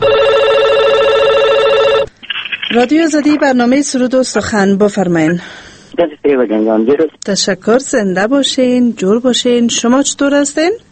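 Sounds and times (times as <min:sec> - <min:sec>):
telephone warbling ring of an incoming call: 0:00.0 - 0:03.6
speech: 0:02.7 - 0:10.9.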